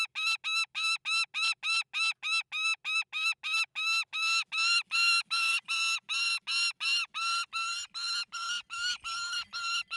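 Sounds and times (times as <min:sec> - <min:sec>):
Saker falcon grating squawks: 0:00.2 - 0:09.9.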